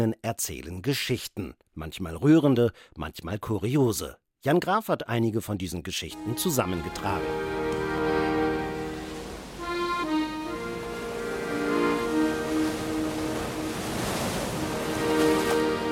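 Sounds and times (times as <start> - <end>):
speech: 0.0 - 7.6
ocean waves breaking on a shore: 6.2 - 15.9
sustained droning musical tones: 6.2 - 15.9.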